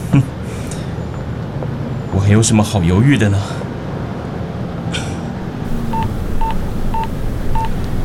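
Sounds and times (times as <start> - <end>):
low hum: 0.0 - 8.0
speech: 2.2 - 3.6
telephone keypad DTMF beeps: 5.9 - 7.8.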